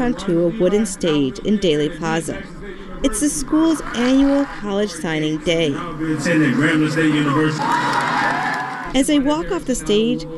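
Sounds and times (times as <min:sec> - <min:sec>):
speech: 0:00.0 - 0:08.0, 0:08.9 - 0:10.3
crowd of parents and grandparents cheering and whooping at a graduation: 0:06.6 - 0:08.9
several voices shouting in celebration: 0:07.4 - 0:08.9.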